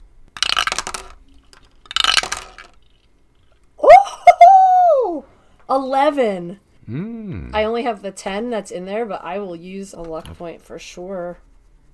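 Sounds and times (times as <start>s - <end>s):
dice rattling down a dice tower: 0.4s - 3.6s
person singing or exclaiming: 3.8s - 5.3s, 6.9s - 7.7s
speech: 5.7s - 11.5s.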